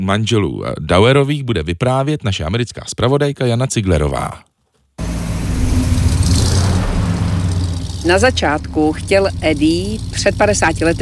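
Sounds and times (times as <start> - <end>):
speech: 0.0 - 4.5, 8.0 - 11.0
vintage 1941 American Cadillac engine starting and driving off: 5.0 - 11.0.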